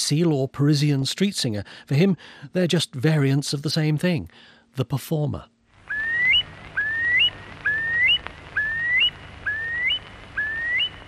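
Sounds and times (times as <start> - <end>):
speech: 0.1 - 5.5
faint low outdoor rumble: 5.7 - 11.0
bird singing clear rising whistled phrase: 5.9 - 11.0.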